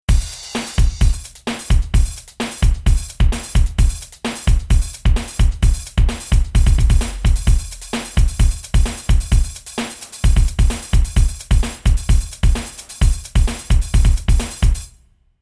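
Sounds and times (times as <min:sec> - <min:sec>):
dance drums: 0:00.0 - 0:15.0.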